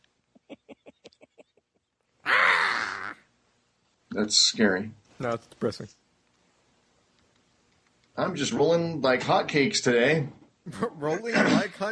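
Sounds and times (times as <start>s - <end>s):
person imitating a bird caw: 2.2s - 3.3s
speech: 4.2s - 6.0s, 8.2s - 11.9s.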